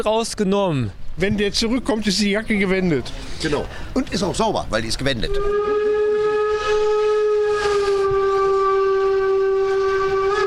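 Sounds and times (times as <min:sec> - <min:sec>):
speech: 0:00.0 - 0:05.9
rumble of locomotive passing on a chilly windy day: 0:03.6 - 0:10.4
locomotive horn blaring in long steady blast: 0:05.2 - 0:10.4.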